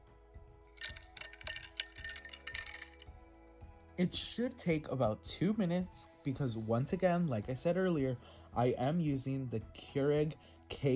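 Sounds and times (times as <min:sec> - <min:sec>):
ice cubes clinking and rattling against a cup: 0:00.8 - 0:03.0
speech: 0:04.0 - 0:10.9.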